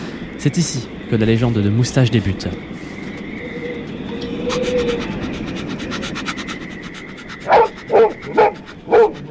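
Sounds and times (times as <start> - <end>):
faint chirping: 0.0 - 9.2
speech: 0.4 - 2.8
dog barking: 7.4 - 9.2.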